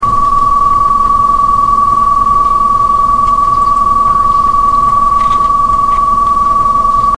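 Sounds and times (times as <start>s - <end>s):
whine: 0.0s - 7.1s.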